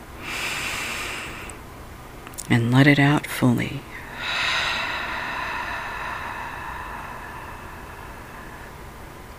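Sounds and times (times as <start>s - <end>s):
deep breath in through the nose: 0.2s - 1.6s, 4.0s - 9.3s
speech: 2.5s - 4.4s.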